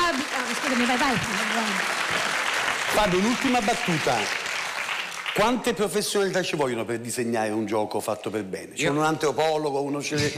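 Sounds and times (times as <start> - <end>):
audience applause: 0.0 - 6.3
speech: 0.7 - 1.9, 2.9 - 4.4, 5.4 - 10.3.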